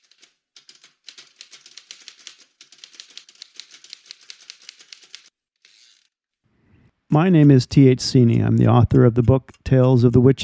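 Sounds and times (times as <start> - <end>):
typewriter keystrokes: 0.0 - 5.3
speech: 7.1 - 10.4.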